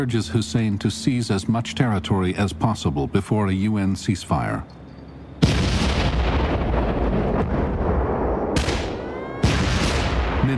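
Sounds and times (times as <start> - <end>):
speech: 0.0 - 4.8
sustained rumble of artillery fire from guns and mortars: 5.4 - 10.5.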